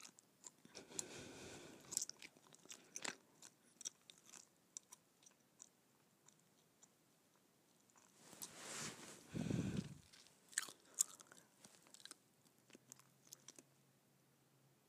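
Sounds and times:
wet gum chewing: 0.0 - 8.5, 9.8 - 13.7
faint low hum: 0.0 - 14.8.

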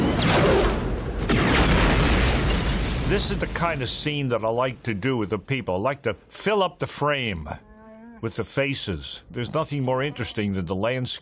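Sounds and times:
loud sustained film explosion roaring: 0.0 - 4.0
speech: 3.1 - 11.2.

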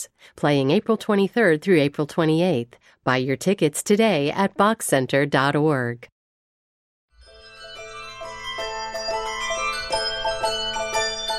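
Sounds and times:
speech: 0.0 - 6.1
several handbells ringing together: 7.3 - 11.3.

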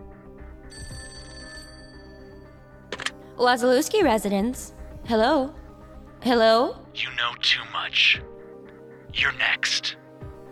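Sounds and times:
low droning background: 0.0 - 10.5
telephone ringing: 0.7 - 3.1
speech: 3.4 - 5.6, 6.2 - 8.3, 9.2 - 10.0.

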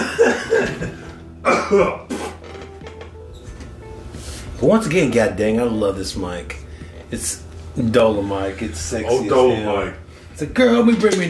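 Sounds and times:
harsh rattling throaty coughs: 0.0 - 2.4
speech: 1.7 - 2.1, 4.6 - 11.2.

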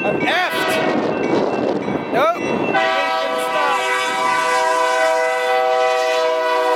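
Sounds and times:
faint rumble of passing train cars: 0.0 - 6.7
train horn blaring: 0.5 - 1.1, 2.7 - 6.7.

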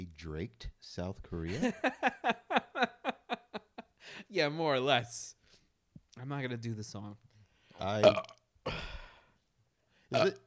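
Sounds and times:
speech: 0.2 - 2.9, 4.0 - 5.4, 6.2 - 7.2, 7.8 - 8.9, 10.1 - 10.4
laughter: 1.5 - 3.9
person burping loudly with deep throaty belches: 8.0 - 9.1, 10.1 - 10.4.

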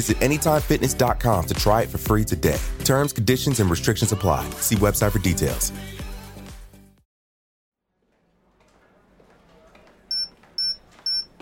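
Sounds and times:
speech: 0.0 - 6.0
electronic device emitting loud high-pitched beeps: 10.1 - 11.3.

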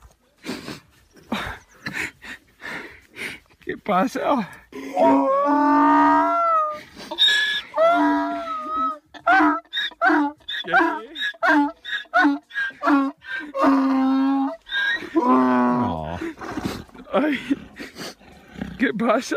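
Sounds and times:
speech: 3.9 - 5.9, 19.2 - 19.3
farmer's donkey braying excitedly on being reunited with its owner: 4.8 - 18.5.

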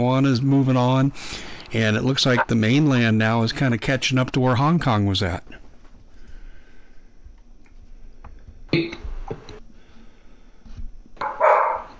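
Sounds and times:
speech: 0.0 - 5.6
faint steady hum: 0.0 - 11.9
dog barking excitedly: 11.2 - 11.9.

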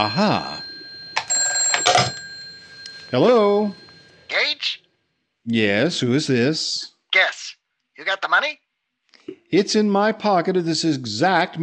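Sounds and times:
speech: 0.0 - 0.6, 3.1 - 3.8, 5.5 - 7.3, 8.0 - 8.6, 9.5 - 11.6
telephone handset clattering: 0.0 - 4.3
old-fashioned telephone bell ringing: 0.0 - 4.6.

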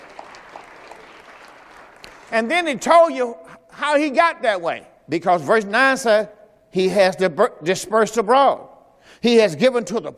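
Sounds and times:
congregation clapping hands in applause: 0.0 - 2.4
speech: 2.3 - 10.1.

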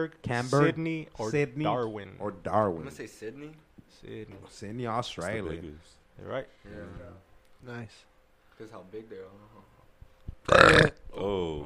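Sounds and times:
speech: 0.0 - 9.7, 10.4 - 11.6
wet burp after drinking milk: 10.4 - 11.0.

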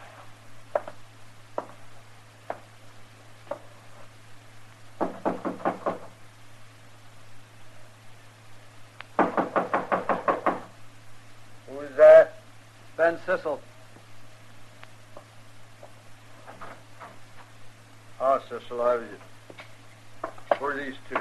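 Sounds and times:
low steady hum: 0.0 - 21.1
knocking on a door: 5.0 - 6.1, 9.2 - 10.7
speech: 13.0 - 13.7, 18.5 - 19.3, 20.6 - 21.1.

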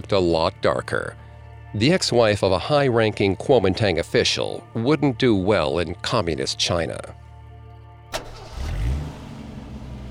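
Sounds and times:
speech: 0.0 - 7.2
car engine cranking, catching and idling: 8.1 - 10.0.

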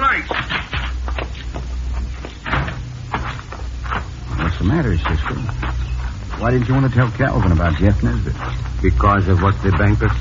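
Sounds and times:
low steady hum: 0.0 - 10.1
back door creaking and thumping shut: 2.4 - 4.5
speech: 4.6 - 5.7, 6.4 - 10.1.

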